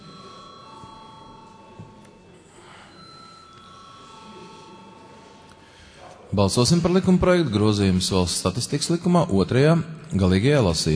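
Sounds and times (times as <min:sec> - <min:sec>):
bell ringing to call members to a vote in parliament: 0:00.0 - 0:06.0
speech: 0:06.3 - 0:10.9.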